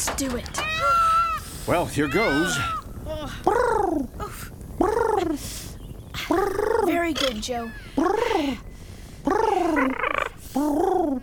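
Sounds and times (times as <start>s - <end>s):
speech: 0.2s - 0.9s, 1.6s - 4.2s, 5.2s - 5.6s, 6.3s - 11.2s
person imitating pigeon cooing: 2.2s - 5.5s, 6.2s - 8.6s, 9.2s - 11.2s.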